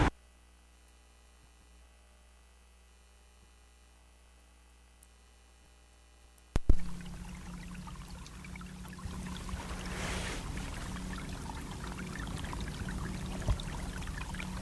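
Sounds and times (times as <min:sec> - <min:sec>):
bubbling brook in Greenland: 0:06.6 - 0:14.6.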